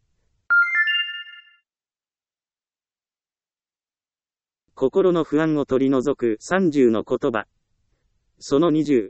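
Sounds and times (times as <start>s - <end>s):
mobile phone ringtone: 0.5s - 1.7s
speech: 4.8s - 7.6s, 8.4s - 9.0s.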